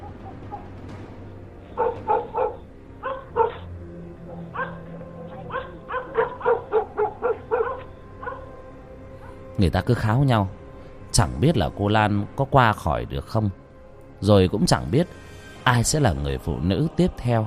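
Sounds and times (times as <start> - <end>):
dogs barking at night at the edge of a village by a river: 1.6 - 9.5
speech: 9.6 - 10.6, 11.2 - 13.6, 14.2 - 17.4.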